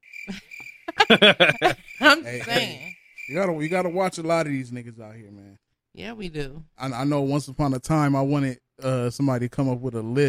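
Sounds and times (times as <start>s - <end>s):
crickets chirping: 0.0s - 4.6s
speech: 0.2s - 0.4s, 1.1s - 10.2s
laughter: 0.3s - 2.9s.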